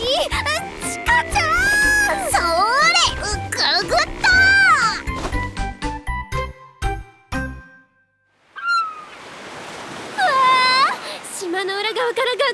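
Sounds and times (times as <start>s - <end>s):
ocean waves: 0.0s - 5.7s, 8.4s - 12.5s
bright chiming tones: 6.1s - 8.2s.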